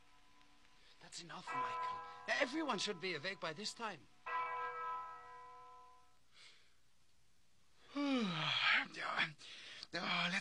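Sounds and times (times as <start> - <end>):
speech: 1.1 - 4.1, 9.0 - 10.3
single bell ringing in the morning: 1.4 - 6.2
person groaning sigh: 7.9 - 8.6.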